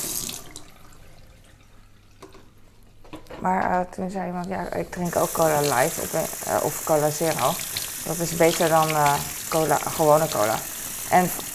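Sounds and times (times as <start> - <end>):
tap water running into a sink while rinsing a bottle: 0.0 - 2.5, 5.0 - 11.5
speech: 3.4 - 11.5.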